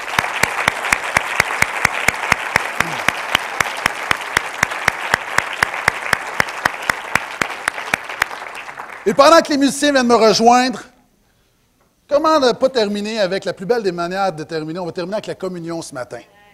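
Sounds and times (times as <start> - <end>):
audience applause: 0.0 - 9.6
speech: 9.0 - 10.9, 12.1 - 16.3.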